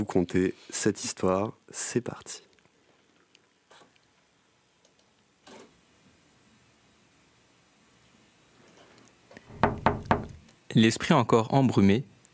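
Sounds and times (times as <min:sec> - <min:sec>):
speech: 0:00.0 - 0:02.5, 0:10.8 - 0:12.1
bird tapping against a window on a November morning: 0:09.5 - 0:10.4.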